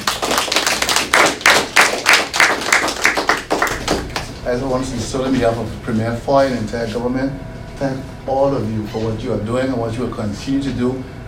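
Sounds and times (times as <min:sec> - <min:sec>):
small group clapping at a government address: 0:00.0 - 0:04.5
speech: 0:04.5 - 0:11.2.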